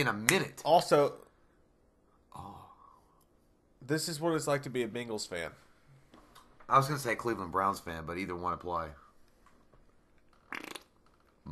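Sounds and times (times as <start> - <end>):
speech: 0.0 - 1.2, 3.8 - 5.6, 6.7 - 9.0
short sputtering fart with rapid flapping pulses: 10.4 - 11.0.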